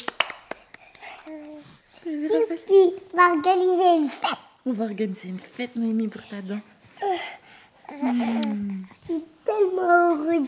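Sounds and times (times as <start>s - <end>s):
hands clapping: 0.0s - 1.1s
speech: 2.4s - 7.2s, 8.0s - 10.4s.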